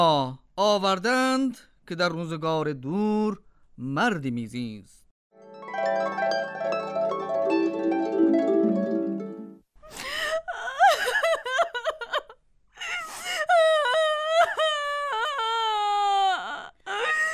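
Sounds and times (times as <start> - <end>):
speech: 0.0 - 5.0
tonal music: 5.4 - 9.6
person crying and wailing: 9.9 - 17.3.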